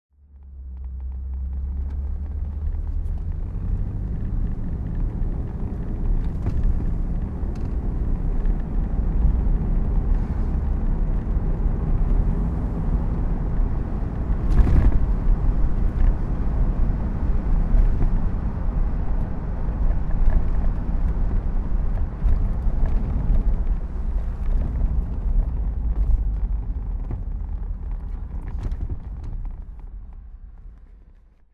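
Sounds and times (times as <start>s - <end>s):
Bentley convertible driving: 0.2s - 31.5s.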